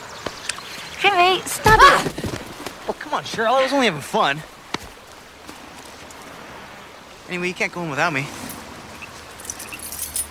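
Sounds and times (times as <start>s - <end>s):
speech: 1.1s - 2.2s, 2.9s - 4.6s, 7.3s - 8.4s
bunch of keys jangling: 9.4s - 10.2s.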